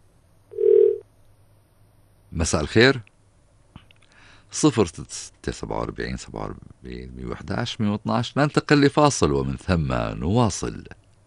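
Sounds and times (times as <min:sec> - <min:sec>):
electronic telephone tone signalling an incoming call: 0:00.5 - 0:01.0
speech: 0:02.4 - 0:03.1, 0:04.5 - 0:11.0.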